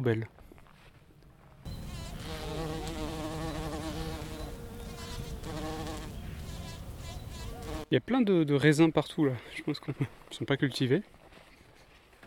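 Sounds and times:
speech: 0.0s - 0.4s, 7.9s - 11.2s
bee buzzing while foraging: 1.7s - 7.9s.

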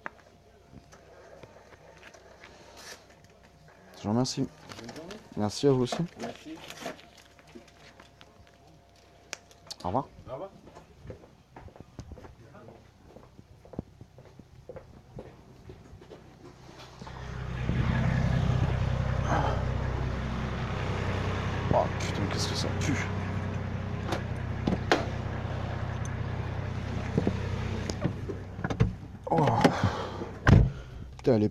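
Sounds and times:
speech: 4.0s - 7.0s, 9.8s - 10.1s
Nissan Patrol SUV engine idling: 16.6s - 31.2s
sharp clunks: 24.1s - 25.2s.

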